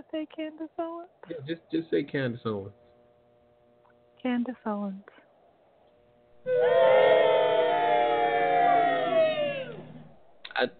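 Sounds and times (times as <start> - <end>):
speech: 0.1 - 2.8, 4.2 - 5.2, 6.4 - 7.4, 10.6 - 10.7
loud crowd booing: 6.4 - 10.2.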